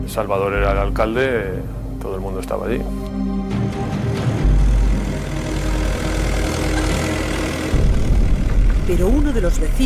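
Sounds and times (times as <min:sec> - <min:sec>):
speech: 0:00.1 - 0:03.1, 0:08.9 - 0:09.8
heavy tractor engine revving and idling: 0:02.9 - 0:09.8.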